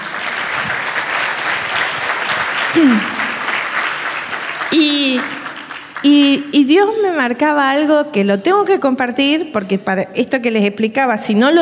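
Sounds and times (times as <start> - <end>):
congregation clapping: 0.0 - 7.1
speech: 2.8 - 3.2, 6.0 - 11.5.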